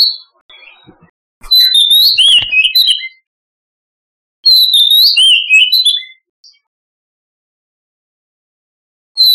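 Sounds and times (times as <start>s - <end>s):
oriental magpie-robin whistled song: 0.0s - 3.3s, 4.4s - 6.7s, 9.2s - 9.3s.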